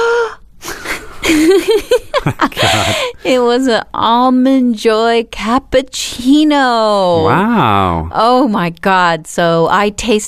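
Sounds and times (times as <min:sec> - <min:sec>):
laughter: 0:01.3 - 0:03.1, 0:07.2 - 0:08.0
speech: 0:01.3 - 0:10.2
breathy wheezy vocal sounds with rising and falling pitch: 0:02.6 - 0:03.2
person loudly imitating a surprised gasp: 0:02.6 - 0:03.2, 0:07.2 - 0:08.1.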